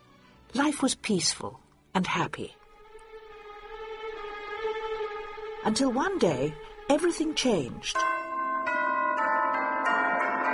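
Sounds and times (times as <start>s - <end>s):
speech: 0.6s - 2.6s, 5.6s - 8.1s
castle bells ringing: 6.5s - 10.5s.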